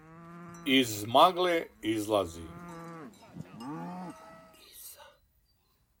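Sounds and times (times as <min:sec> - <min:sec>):
cows lowing with bending pitch: 0:00.0 - 0:04.8
speech: 0:00.6 - 0:02.6.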